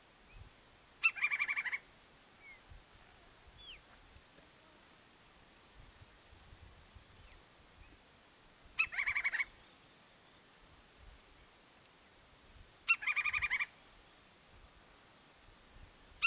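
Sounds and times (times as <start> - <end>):
woodpecker calling in harsh rasping chattering bursts: 1.0 - 1.8, 8.8 - 9.6, 12.9 - 13.8.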